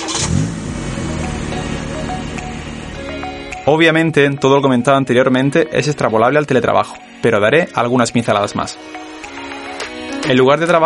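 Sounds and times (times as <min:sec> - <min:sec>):
car engine starting, revving and driving off: 0:00.0 - 0:03.4
speech: 0:03.7 - 0:09.2, 0:10.2 - 0:10.8.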